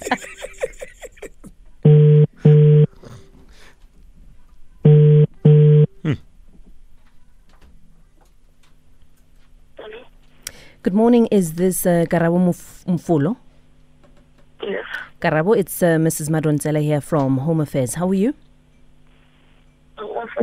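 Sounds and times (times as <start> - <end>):
laughter: 0.0 - 1.5
telephone ringback tone: 1.9 - 2.9, 4.9 - 5.9
speech: 10.9 - 13.4, 15.2 - 18.4.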